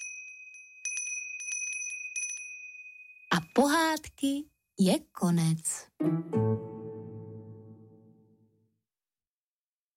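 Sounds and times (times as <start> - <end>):
small bell ringing: 0.0 - 4.1
speech: 3.6 - 6.7.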